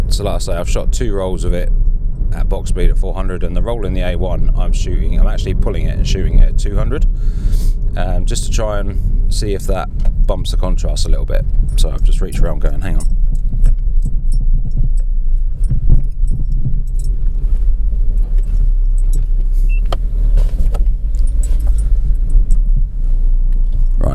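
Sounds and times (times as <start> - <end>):
car engine idling: 0.0 - 24.1
speech: 0.2 - 13.2
faint clicks and jingling handling noises inside a vehicle: 10.2 - 19.8, 20.7 - 22.9.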